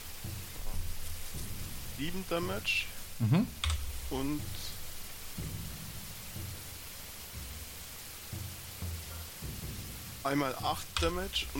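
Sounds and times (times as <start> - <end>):
rain: 0.0 - 11.5
speech: 2.0 - 4.7, 10.2 - 11.5.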